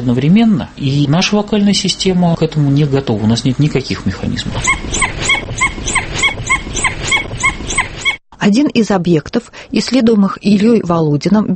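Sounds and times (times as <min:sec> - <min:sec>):
speech: 0:00.0 - 0:05.4, 0:08.4 - 0:11.5
dhole giving high whistling yelps with two pitches: 0:04.5 - 0:08.2.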